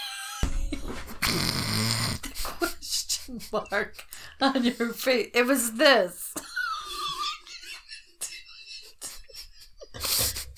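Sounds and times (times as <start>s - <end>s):
loud raspy fart: 1.2s - 2.3s
speech: 3.3s - 6.2s
laughter: 6.4s - 10.5s.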